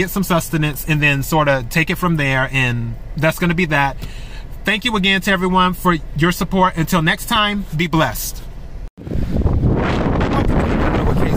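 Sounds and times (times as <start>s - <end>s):
speech: 0.0s - 8.4s
wind buffeting the microphone outdoors: 9.0s - 11.3s.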